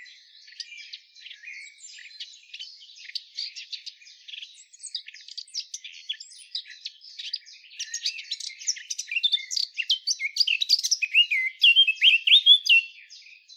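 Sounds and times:
Eurasian blackcap Sylvia atricapilla chattering and warbling: 3.0s - 13.1s.

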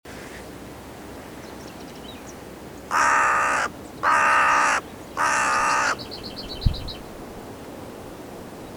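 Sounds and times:
carrion crow Corvus corone cawing: 2.9s - 6.0s.

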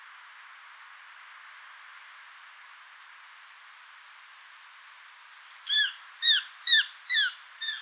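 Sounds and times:
Eurasian jay Garrulus glandarius calls, short harmonic downslurred notes: 5.7s - 7.8s.

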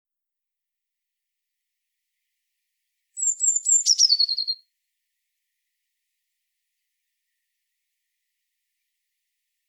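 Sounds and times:
Eurasian blue tit Cyanistes caeruleus singing: 3.2s - 4.6s.

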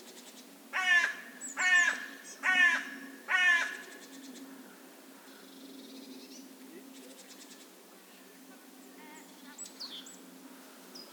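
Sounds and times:
carrion crow cawing raspily: 0.7s - 4.0s.

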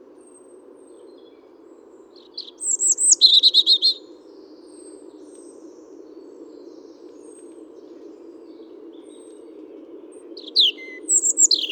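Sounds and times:
European robin Erithacus rubecula singing: 2.2s - 4.0s, 10.4s - 11.6s.

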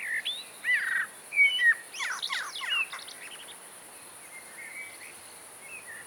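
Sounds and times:
Eurasian blackbird Turdus merula singing: 0.1s - 3.4s.

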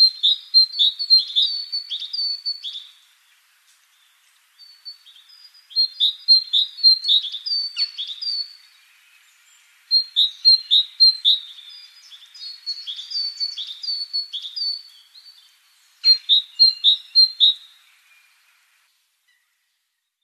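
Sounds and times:
Great tit Parus major chirping: 0.0s - 18.5s.

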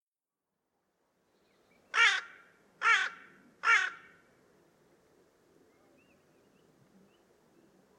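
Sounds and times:
carrion crow Corvus corone giving loud raspy caws: 1.9s - 4.3s.

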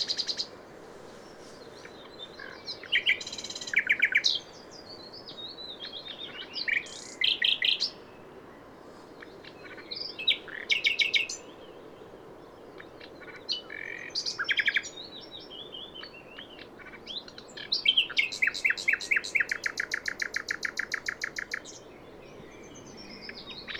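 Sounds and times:
common nightingale Luscinia megarhynchos singing: 1.6s - 8.3s, 9.4s - 23.7s.

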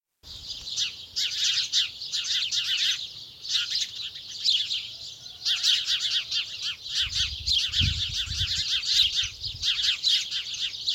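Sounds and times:
flock of house sparrows Passer domesticus chirping: 0.3s - 10.9s.

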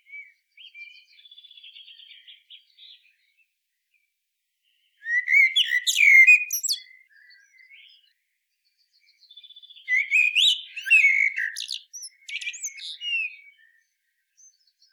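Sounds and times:
Eurasian blackbird Turdus merula singing: 0.0s - 3.5s, 4.7s - 14.9s.

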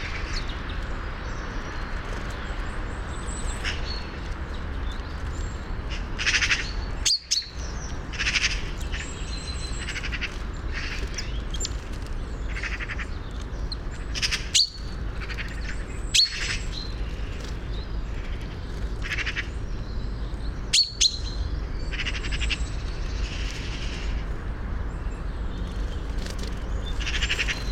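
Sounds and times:
constant low wind-like noise: 0.0s - 27.7s
common chaffinch calls, Fringilla coelebs: 4.9s - 24.2s, 26.8s - 27.7s.

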